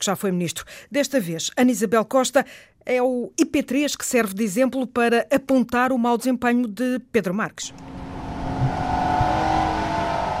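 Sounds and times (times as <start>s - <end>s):
speech: 0.0s - 8.1s
car engine humming and revving: 7.7s - 10.3s.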